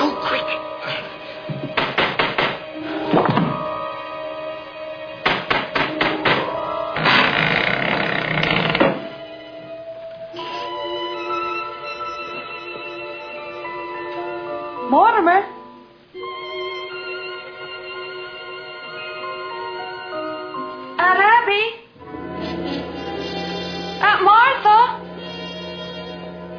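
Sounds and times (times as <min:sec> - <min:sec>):
steady tonal drone: 0:00.0 - 0:01.8, 0:02.6 - 0:05.2, 0:06.0 - 0:26.5
knocking on a door: 0:01.5 - 0:02.6, 0:05.2 - 0:06.5.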